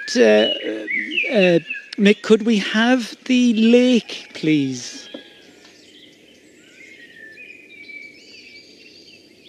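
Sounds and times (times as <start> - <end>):
steady low outdoor hum: 0.0 - 6.7
thin high warbling robin-like birdsong: 0.0 - 9.4
speech: 0.1 - 5.0.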